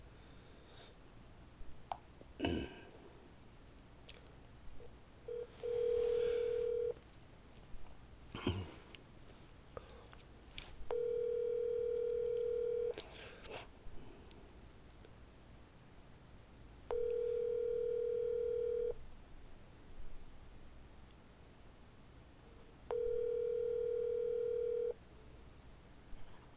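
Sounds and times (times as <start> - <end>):
outgoing phone call ringback tones on the line: 5.3 - 7.0, 10.9 - 13.0, 16.9 - 19.0, 22.9 - 25.0.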